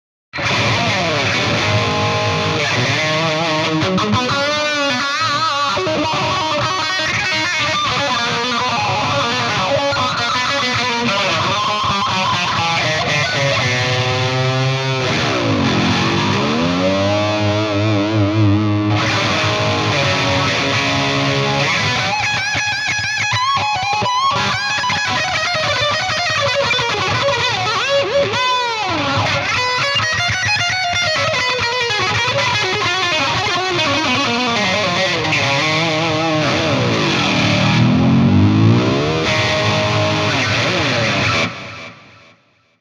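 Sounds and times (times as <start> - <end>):
ESP bass guitar: 0.4 - 42.1.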